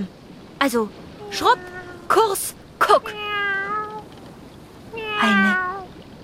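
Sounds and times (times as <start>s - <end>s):
speech: 0.0s - 3.5s, 5.2s - 5.7s
cat meowing: 1.2s - 2.4s, 3.0s - 4.1s, 4.9s - 5.9s.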